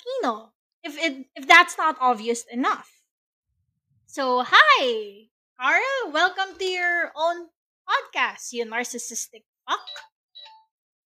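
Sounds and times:
speech: 0.2s - 3.0s, 4.1s - 10.1s
phone notification two-tone chime: 9.8s - 10.7s.

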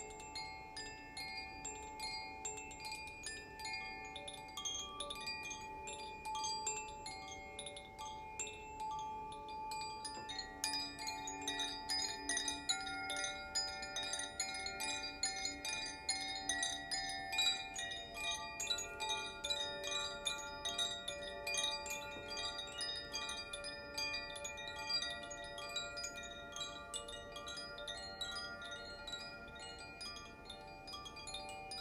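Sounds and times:
Koshi chimes ringing with shimmering sustains: 0.0s - 31.8s.

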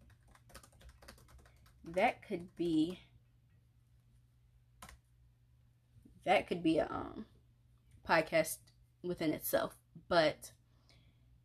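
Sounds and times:
typing on a keyboard: 0.0s - 3.0s, 4.8s - 5.0s
speech: 1.8s - 3.1s, 6.3s - 7.3s, 8.1s - 10.6s.

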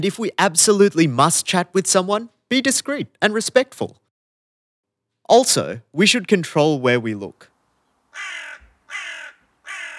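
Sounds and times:
speech: 0.0s - 4.0s, 5.3s - 7.5s
crow cawing: 8.1s - 9.9s.

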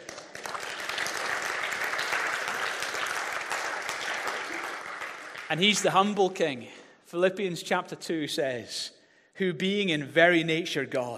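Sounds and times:
congregation applauding: 0.0s - 6.3s
speech: 5.5s - 11.1s.

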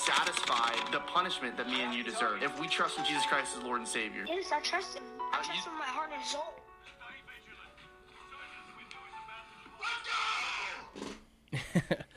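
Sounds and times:
speech: 0.1s - 6.6s
gamer yelling and screaming excitedly: 9.8s - 10.9s.

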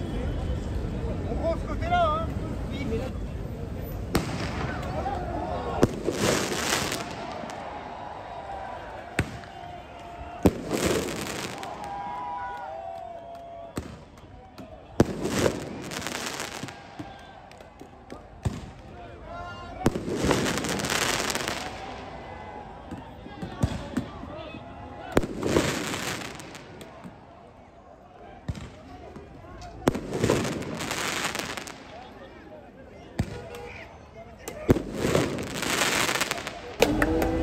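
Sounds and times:
crowd murmur with indistinct voices: 0.0s - 37.4s
fireworks shot by demonstrators at police banging and crackling: 4.0s - 8.4s, 9.1s - 12.4s, 13.8s - 19.0s, 19.8s - 22.2s, 22.9s - 24.3s, 25.1s - 27.3s, 28.4s - 32.1s, 34.4s - 37.4s.

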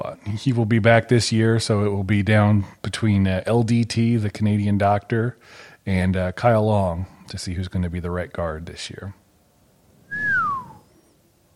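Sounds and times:
speech: 0.0s - 9.2s
person whistling a downward sliding tone: 10.1s - 11.1s.

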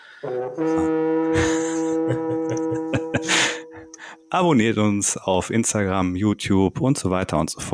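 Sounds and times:
loud sustained horn blast with buzzy harmonic tone: 0.0s - 4.3s
speech: 0.2s - 1.5s, 4.3s - 7.7s
laughter: 0.7s - 4.0s.

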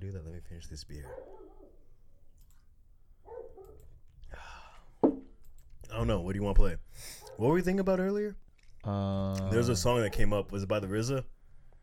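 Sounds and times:
speech: 0.0s - 1.4s, 6.0s - 11.4s
female dog barking: 1.0s - 1.8s, 3.2s - 3.9s.

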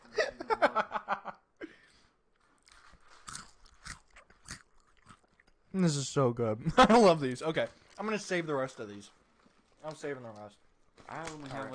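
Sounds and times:
person biting and chewing a crunchy snack: 2.5s - 5.5s
speech: 5.8s - 9.2s, 9.8s - 11.7s.

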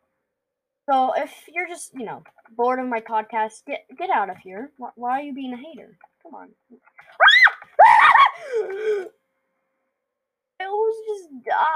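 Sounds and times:
speech: 0.9s - 7.2s, 8.4s - 9.2s, 10.6s - 11.7s
man screaming in panic: 7.2s - 9.1s.

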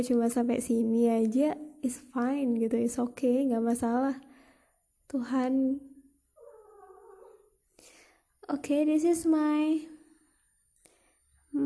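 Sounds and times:
speech: 0.0s - 4.3s, 5.1s - 5.9s, 8.5s - 9.9s
cat meowing: 6.4s - 7.4s.

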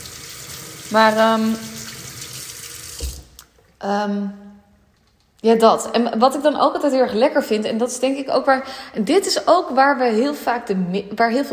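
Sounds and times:
tap water running into a sink while hands are washed: 0.0s - 3.6s
speech: 0.9s - 1.8s, 3.8s - 4.5s, 5.4s - 11.5s.

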